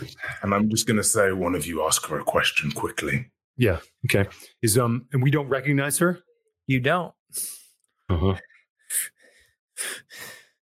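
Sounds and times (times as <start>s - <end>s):
speech: 0.4s - 9.2s
heavy breathing: 8.9s - 10.6s.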